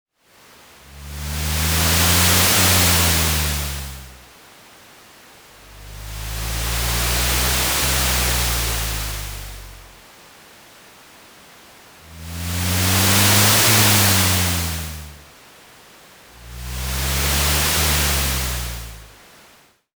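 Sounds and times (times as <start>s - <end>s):
vehicle passing on highway: 0.8s - 4.3s, 5.6s - 10.0s, 11.9s - 15.4s, 16.3s - 19.3s.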